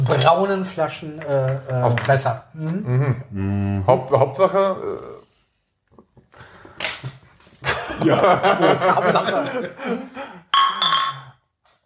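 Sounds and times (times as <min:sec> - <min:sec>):
speech: 0:00.1 - 0:05.2, 0:08.0 - 0:10.2
glasses clinking in a toast: 0:06.4 - 0:08.3, 0:10.5 - 0:11.4
laughter: 0:07.6 - 0:10.4.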